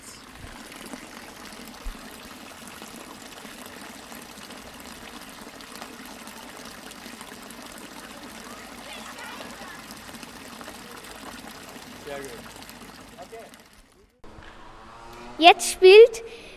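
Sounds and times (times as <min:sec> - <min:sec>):
village fountain water splashing: 0:00.0 - 0:14.2
speech: 0:15.4 - 0:16.4.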